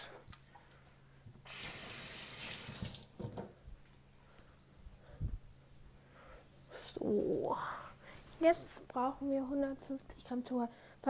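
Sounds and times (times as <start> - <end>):
water running from a tap while washing hands: 1.5 - 3.2
speech: 7.1 - 7.8, 8.4 - 11.0.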